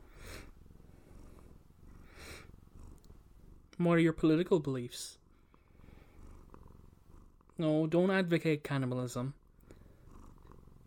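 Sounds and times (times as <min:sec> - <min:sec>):
cat purring close to the microphone: 0:00.0 - 0:10.8
speech: 0:03.8 - 0:05.2, 0:07.6 - 0:09.4.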